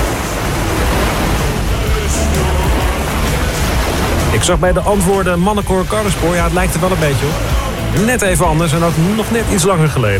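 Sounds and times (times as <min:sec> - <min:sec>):
ocean surf washing in: 0:00.0 - 0:10.1
faint singing voices: 0:01.1 - 0:09.0
speech: 0:04.4 - 0:10.1.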